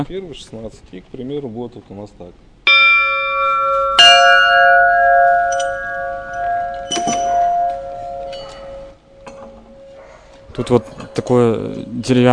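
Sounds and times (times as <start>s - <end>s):
speech: 0.0s - 2.5s, 10.6s - 12.3s
small 8 kg bell being struck: 2.7s - 12.3s.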